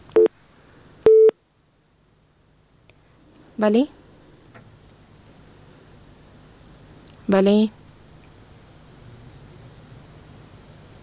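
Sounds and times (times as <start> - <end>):
telephone tone after a call is cut off: 1.1 - 1.3
speech: 3.6 - 4.0, 7.3 - 7.8.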